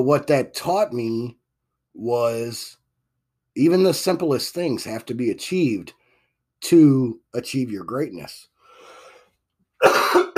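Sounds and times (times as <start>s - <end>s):
speech: 0.0s - 1.4s, 2.0s - 2.8s, 3.6s - 6.0s, 6.6s - 8.5s
harsh throaty cough: 9.8s - 10.3s.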